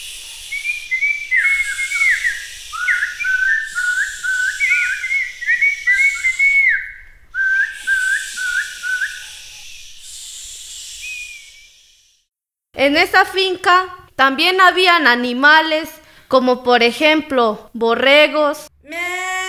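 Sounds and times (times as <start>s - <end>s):
airy hiss: 0.0s - 6.7s, 7.7s - 12.3s
bird singing warbling whistled phrases: 0.0s - 12.2s
speech: 12.8s - 18.7s.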